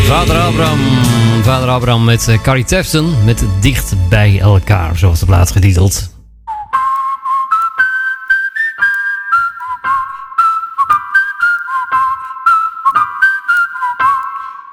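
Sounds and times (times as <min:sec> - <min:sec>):
regular evenly spaced percussive beat: 0:00.0 - 0:04.0
speech: 0:00.2 - 0:06.1
clear bright whistled melody: 0:06.5 - 0:14.7.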